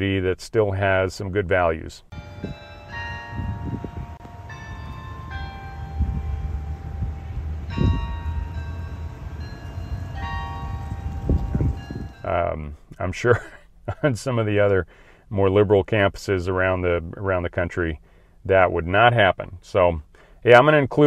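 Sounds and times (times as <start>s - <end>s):
speech: 0.0s - 2.6s, 12.6s - 21.0s
steady low outdoor rumble: 2.0s - 14.7s
campus noon bells chiming a Christmas carol melody: 2.1s - 12.6s.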